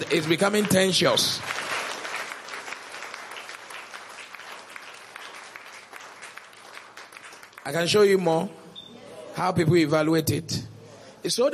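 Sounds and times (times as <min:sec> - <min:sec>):
speech: 0:00.0 - 0:01.6, 0:07.7 - 0:08.6, 0:09.4 - 0:11.5
large crowd applauding: 0:00.0 - 0:08.2.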